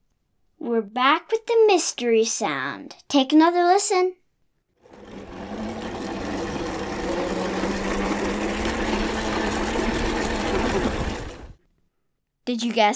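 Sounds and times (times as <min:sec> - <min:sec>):
speech: 0:00.6 - 0:04.2, 0:12.5 - 0:12.9
electric scooter motor whirring: 0:04.9 - 0:11.6.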